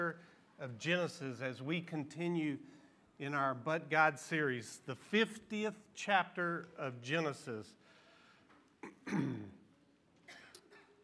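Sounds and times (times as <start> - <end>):
speech: 0.1 - 7.8, 8.8 - 9.6
man clearing throat: 8.8 - 9.6.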